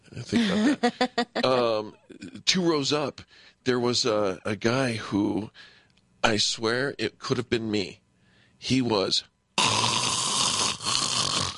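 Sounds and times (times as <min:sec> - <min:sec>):
speech: 0:00.2 - 0:08.0, 0:08.6 - 0:09.8
voice imitating a man snoring on an airplane: 0:09.6 - 0:11.5.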